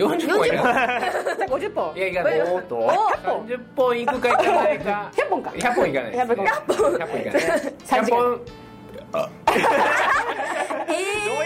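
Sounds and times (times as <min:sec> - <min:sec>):
laughter: 0:00.0 - 0:01.5, 0:09.4 - 0:11.4
speech: 0:00.0 - 0:11.4
person burping loudly and throatily: 0:08.9 - 0:09.5.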